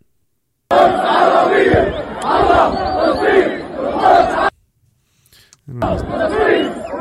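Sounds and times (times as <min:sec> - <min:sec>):
large upset crowd shouting in the street: 0:00.7 - 0:04.5, 0:05.8 - 0:06.9
speech: 0:05.7 - 0:06.9.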